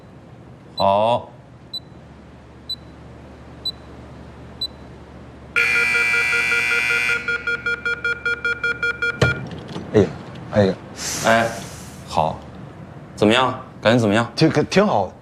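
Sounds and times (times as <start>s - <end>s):
speech: 0.8s - 1.3s, 10.0s - 11.6s, 13.2s - 15.2s
electronic timer beeping after a door is locked: 5.6s - 9.4s
loud sustained electronic tone: 5.6s - 9.4s.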